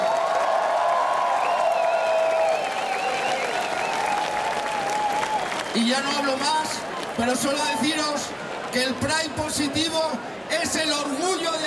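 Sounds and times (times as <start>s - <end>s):
large audience clapping: 0.0s - 8.6s
crowd cheering: 0.0s - 11.6s
wavering whistle from crowd: 1.3s - 4.2s, 5.5s - 6.3s
speech: 5.8s - 10.9s.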